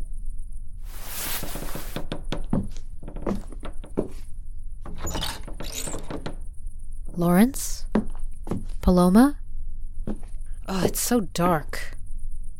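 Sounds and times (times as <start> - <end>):
dark empty old house creaking and groaning: 1.3 - 8.9
drawn-out squeaky creaks: 1.4 - 7.2
wooden knocks and thunks: 1.5 - 6.4, 7.9 - 8.8, 10.0 - 10.4
speech: 7.2 - 7.7, 8.9 - 9.4, 10.7 - 11.9.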